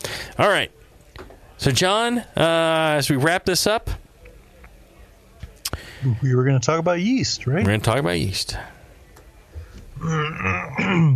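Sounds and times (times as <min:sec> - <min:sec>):
speech: 0:00.4 - 0:04.0, 0:06.0 - 0:08.8, 0:10.0 - 0:11.1
man clearing his throat: 0:10.0 - 0:11.1.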